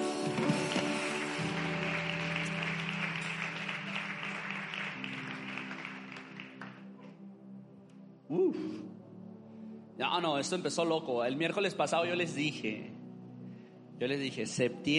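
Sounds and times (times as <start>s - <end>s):
sustained keyboard chords: 0.0s - 9.4s
church audience clapping: 0.2s - 7.2s
speech: 8.3s - 9.0s, 10.0s - 13.0s, 14.0s - 14.9s.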